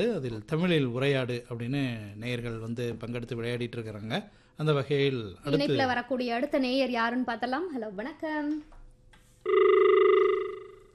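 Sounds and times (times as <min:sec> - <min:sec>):
speech: 0:00.0 - 0:08.8, 0:09.4 - 0:09.7
telephone ringing with electronic ring tone: 0:09.4 - 0:10.9.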